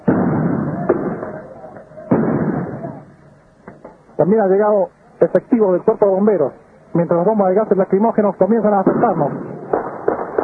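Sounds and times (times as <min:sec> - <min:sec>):
firearm gunshots during street clashes: 0:00.0 - 0:04.0, 0:08.5 - 0:10.4
noisy broadband roar: 0:00.0 - 0:10.4
speech: 0:04.2 - 0:09.5.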